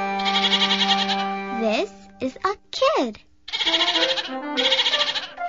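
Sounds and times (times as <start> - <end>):
calf mooing: 0.2 - 1.5, 3.5 - 5.4.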